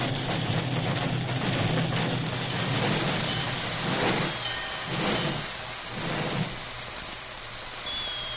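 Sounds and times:
steam locomotive hissing as it slows to a halt: 0.0s - 8.3s
faint high metallic squeals of steam locomotive slowing: 2.6s - 6.6s.

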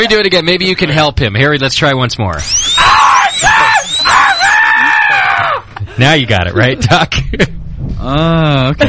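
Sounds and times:
speech: 0.0s - 3.5s, 6.0s - 8.8s
several people screaming with high-pitched shrieks: 2.4s - 5.7s.

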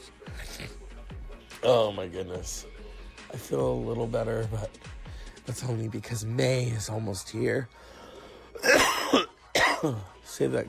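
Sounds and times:
speech: 1.6s - 4.9s, 5.5s - 7.9s, 9.8s - 10.6s
harsh throaty coughing: 8.6s - 10.2s.

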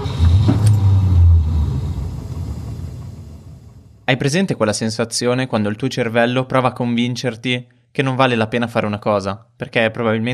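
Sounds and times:
car engine starting with a clatter and driving off: 0.0s - 4.1s
speech: 4.1s - 10.3s.

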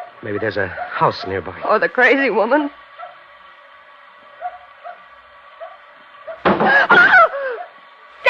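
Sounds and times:
faint yipping: 0.0s - 1.5s, 2.9s - 3.3s, 4.4s - 7.8s
speech: 0.2s - 2.8s
heavy thumps on the back of a car body: 6.4s - 6.9s.

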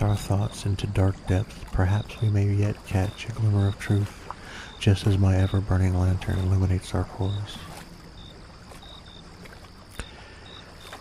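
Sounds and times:
water lapping as a small boat glides toward a dock: 0.0s - 10.9s
speech: 0.1s - 4.2s, 4.8s - 7.7s.

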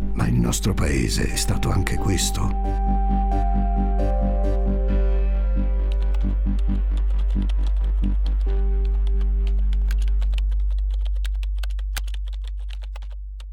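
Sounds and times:
speech: 0.4s - 3.4s
faint tonal notes: 0.9s - 6.6s
typing on a computer keyboard to search the internet: 5.9s - 13.2s.

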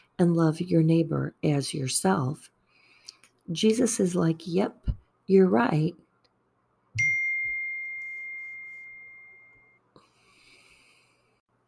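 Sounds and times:
speech: 0.2s - 2.6s, 3.5s - 6.0s
phone text message notification chime: 7.0s - 9.8s.

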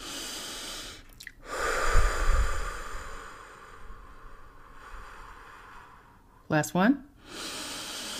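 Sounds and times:
deep breathing during a guided spiritual meditation exercise: 0.0s - 6.5s, 7.1s - 8.1s
speech: 6.5s - 7.4s.

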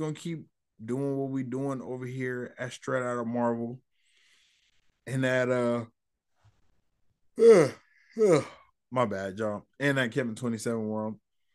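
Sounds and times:
speech: 0.0s - 3.9s, 5.0s - 6.0s, 7.4s - 11.2s
person yawning: 7.4s - 8.6s.

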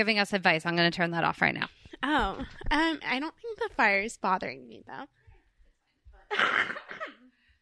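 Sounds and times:
speech: 0.0s - 5.2s
small breathy cough with a voiced rasp: 6.3s - 7.4s.

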